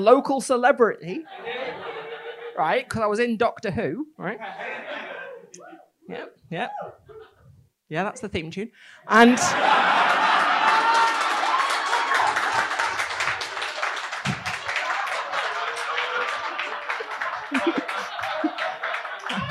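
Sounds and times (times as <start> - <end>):
speech: 0.0 - 1.9, 2.6 - 7.3, 7.9 - 10.5
laughter: 1.3 - 2.6, 4.4 - 5.9, 6.7 - 7.5, 9.3 - 19.4
live audience applauding: 9.5 - 19.4.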